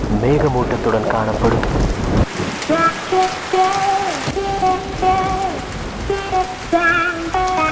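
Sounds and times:
steady drizzling rain: 0.0s - 7.7s
speech: 0.2s - 3.9s.

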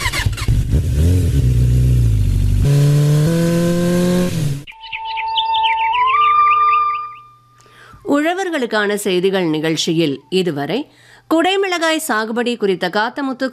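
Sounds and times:
vehicle engine revving as it drives off: 0.0s - 4.7s
bright repeated birdsong chirps: 4.7s - 7.8s
speech: 8.6s - 13.5s.

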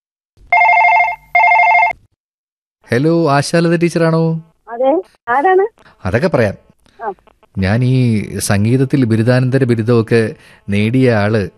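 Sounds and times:
telephone ringing with warbling tone: 0.5s - 2.0s
speech: 2.9s - 11.5s.

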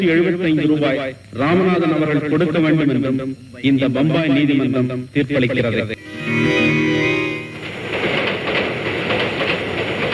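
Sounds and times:
speech: 0.0s - 6.8s
sustained tonal whine: 0.0s - 8.4s
train clattering rhythmically along the rails: 7.4s - 10.1s.

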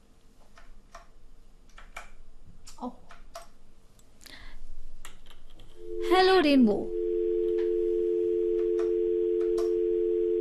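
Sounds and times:
speech: 2.8s - 3.0s, 6.2s - 7.0s
steady telephone tone of a call failing to connect: 5.8s - 10.4s.

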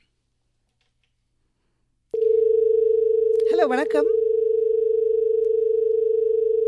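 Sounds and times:
steady telephone tone after caller hung up: 2.2s - 6.6s
speech: 3.6s - 4.2s.

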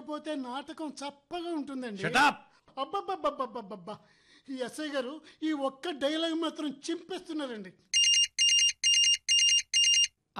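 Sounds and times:
speech: 0.1s - 8.0s
mobile phone ringing with an incoming call: 7.9s - 10.2s.

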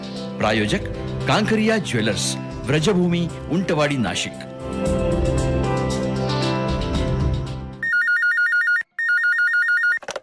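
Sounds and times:
music: 0.0s - 7.8s
speech: 0.4s - 5.0s
telephone ringtone with high electronic warbling tone: 7.8s - 10.1s.

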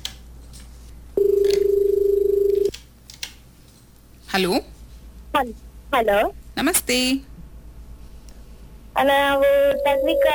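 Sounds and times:
faint noise: 0.0s - 10.3s
electronic telephone tone of an incoming call on a radio phone-in show: 1.2s - 2.7s, 9.5s - 10.3s
speech: 4.4s - 4.7s, 5.4s - 7.3s, 9.0s - 10.3s.

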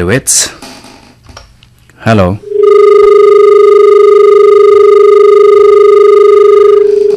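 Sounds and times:
speech: 0.0s - 0.7s, 2.0s - 2.4s
telephone ringing with a steady electronic tone: 2.4s - 7.1s.

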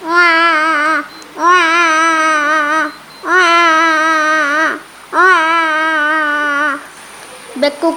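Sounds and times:
baby crying: 0.0s - 6.9s.

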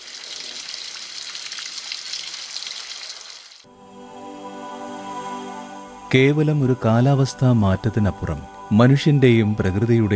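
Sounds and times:
monsoon rain falling: 0.0s - 3.6s
speech: 6.1s - 10.1s.

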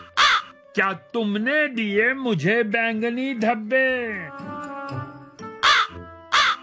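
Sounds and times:
crow cawing: 0.0s - 0.6s, 5.6s - 6.6s
soft steady musical backdrop: 0.0s - 6.6s
speech: 0.8s - 5.0s.

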